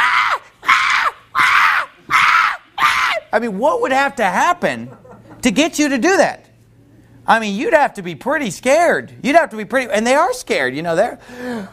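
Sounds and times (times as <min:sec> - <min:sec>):
voice imitating a newborn baby screaming: 0:00.0 - 0:03.3
speech: 0:03.3 - 0:06.4, 0:07.2 - 0:11.7.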